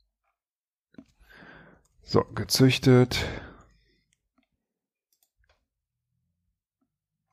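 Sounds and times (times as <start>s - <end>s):
speech: 2.1s - 3.4s
sharp computer mouse clicks: 5.1s - 5.7s.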